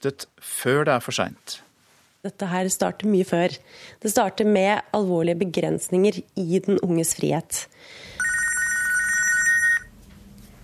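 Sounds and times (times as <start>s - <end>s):
speech: 0.0s - 8.1s
faint noise: 0.0s - 10.6s
helpline telephone ringing with bright electronic trill: 8.2s - 10.0s.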